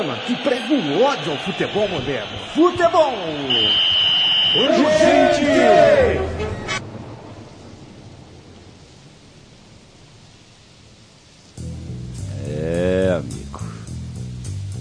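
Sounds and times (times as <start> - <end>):
speech: 0.0 - 3.9, 4.5 - 6.6
steady rain: 0.0 - 14.7
loud rumbling roll of thunder: 6.4 - 11.6.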